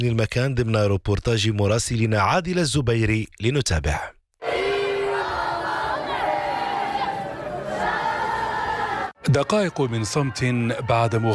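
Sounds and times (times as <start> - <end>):
speech: 0.0 - 4.2, 9.2 - 11.3
large stadium crowd chanting in unison: 4.4 - 9.2.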